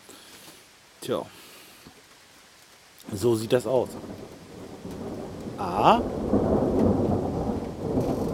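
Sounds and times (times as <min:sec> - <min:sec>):
soft hiss of rain: 0:00.0 - 0:08.3
speech: 0:01.0 - 0:01.4, 0:03.1 - 0:04.4, 0:05.6 - 0:06.4
low rolling thunder during a thunderstorm: 0:03.6 - 0:08.3.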